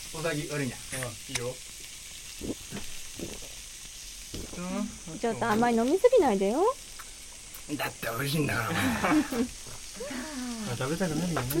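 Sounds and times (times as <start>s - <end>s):
meat, vegetables and green onions sizzling on a grill: 0.0s - 11.5s
speech: 0.1s - 1.8s, 2.4s - 3.3s, 4.6s - 6.9s, 7.7s - 11.5s
laughter: 8.5s - 10.8s.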